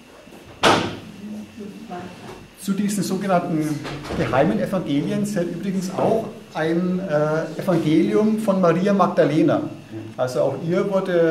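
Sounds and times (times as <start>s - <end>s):
door pushed shut with a solid thud: 0.6s - 1.0s, 3.8s - 4.6s
speech: 1.6s - 11.3s.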